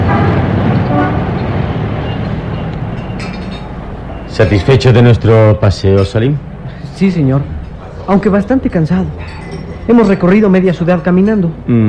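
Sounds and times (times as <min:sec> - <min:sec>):
car horns tooting: 0:00.0 - 0:05.4
car engines rumbling in busy street traffic: 0:00.0 - 0:11.8
loud continuous roar of the road: 0:00.0 - 0:11.8
speech: 0:04.4 - 0:11.8.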